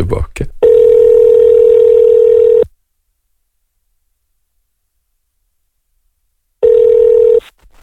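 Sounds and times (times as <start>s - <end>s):
steady electronic telephone tone: 0.6s - 2.7s, 6.6s - 7.4s.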